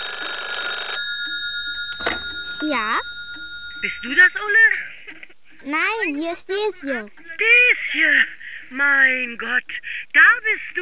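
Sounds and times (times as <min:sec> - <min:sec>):
telephone ringing in a flat: 0:00.0 - 0:05.8
speech: 0:02.6 - 0:03.1, 0:03.8 - 0:04.9, 0:05.6 - 0:10.8.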